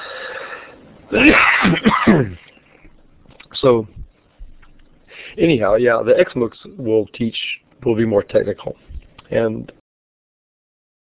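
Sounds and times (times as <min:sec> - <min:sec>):
faint breathing: 0:00.0 - 0:00.8, 0:05.1 - 0:05.4
person coughing: 0:01.1 - 0:02.5
speech: 0:01.1 - 0:02.5, 0:03.6 - 0:04.0, 0:05.4 - 0:09.8.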